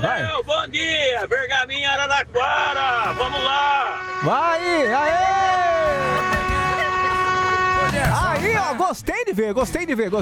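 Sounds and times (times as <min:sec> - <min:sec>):
speech: 0:00.0 - 0:06.3, 0:08.0 - 0:10.2
vehicle horns honking to announce arrivals: 0:02.4 - 0:08.8.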